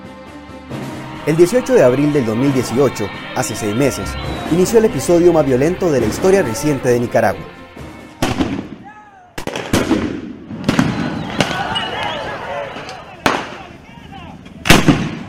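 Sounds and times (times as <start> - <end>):
people's voices and shouting: 0.8 - 7.7, 10.9 - 14.3
speech: 1.2 - 7.6
gunfire detonations: 8.2 - 8.8, 9.4 - 11.7, 14.7 - 15.2.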